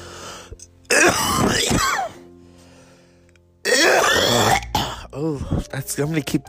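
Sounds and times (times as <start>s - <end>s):
person coughing: 0.9s - 2.2s, 3.7s - 5.1s
speech: 5.2s - 6.4s.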